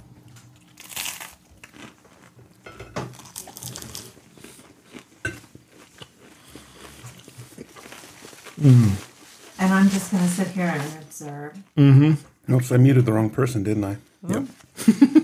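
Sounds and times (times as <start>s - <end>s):
crunching while chewing food: 0.0s - 9.6s
speech: 8.6s - 9.1s, 9.9s - 15.2s.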